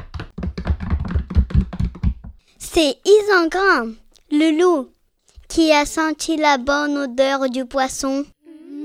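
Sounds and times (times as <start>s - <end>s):
knocking on a door: 0.0s - 2.4s
speech: 2.8s - 8.3s.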